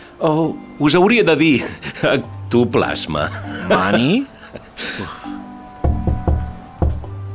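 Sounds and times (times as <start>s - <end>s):
speech: 0.2s - 5.3s
laughter: 1.5s - 2.3s, 3.2s - 5.3s
knocking on the door of a mayor's office in a town hall: 5.8s - 7.2s.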